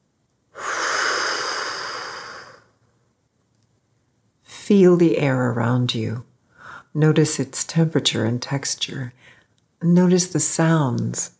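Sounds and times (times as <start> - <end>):
breathing in through the nose and out through the mouth during a guided exercise: 0.5 - 2.8, 9.2 - 9.6
speech: 4.7 - 6.3, 6.9 - 11.3.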